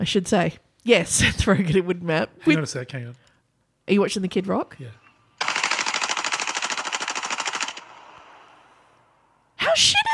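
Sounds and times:
speech: 0.0s - 3.2s, 3.9s - 5.0s, 9.8s - 10.1s
assault rifle automatic gunfire shooting at cans: 5.4s - 8.6s.

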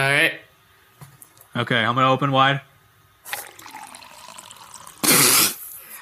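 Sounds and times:
speech: 0.0s - 0.4s, 1.6s - 2.7s
water pouring: 3.3s - 5.4s.

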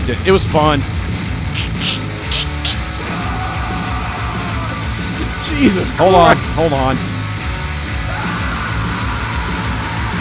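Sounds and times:
speech: 0.0s - 1.1s, 5.6s - 7.1s
thick wall of distorted guitars: 1.0s - 10.2s
harsh yelled vocals: 1.6s - 6.0s, 7.9s - 10.2s.

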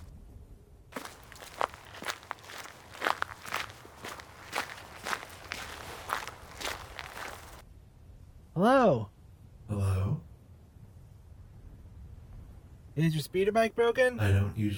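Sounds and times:
running footsteps with soft scuffs: 1.0s - 7.6s
speech: 8.6s - 9.1s, 13.0s - 14.7s.

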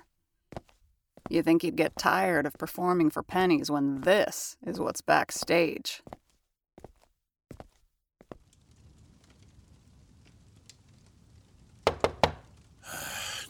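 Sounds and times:
speech: 1.3s - 6.2s
knocking on a door: 11.8s - 12.5s.

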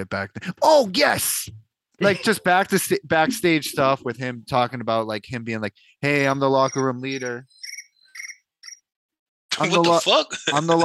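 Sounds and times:
speech: 0.0s - 7.6s, 9.6s - 10.8s
crickets chirping: 6.7s - 8.8s.

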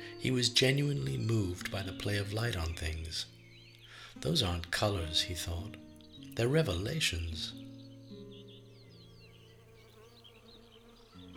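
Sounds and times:
faint birdsong chirping: 0.0s - 11.3s
speech: 0.2s - 3.4s, 4.2s - 7.8s
bee buzzing around flowers: 8.6s - 11.3s.

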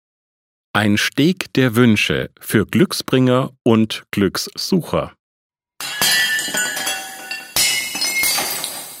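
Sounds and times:
speech: 0.8s - 5.2s
porcelain pieces scattering and settling: 5.8s - 8.9s
porcelain smashing to shards: 5.8s - 8.9s.

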